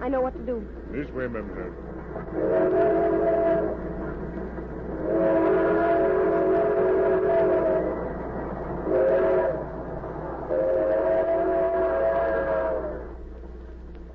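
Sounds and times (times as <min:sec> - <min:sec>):
speech: 0:00.0 - 0:03.8
train rumbling with low roar of the wheels: 0:00.0 - 0:14.1
train whistle long wailing blasts: 0:02.3 - 0:03.8, 0:05.0 - 0:08.1, 0:08.8 - 0:09.7, 0:10.5 - 0:13.2.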